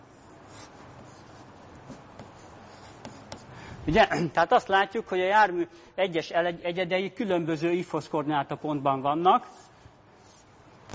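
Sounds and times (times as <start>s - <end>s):
scratching of a diagram being drawn by hand: 0.0s - 3.5s, 9.4s - 10.9s
speech: 3.9s - 9.6s.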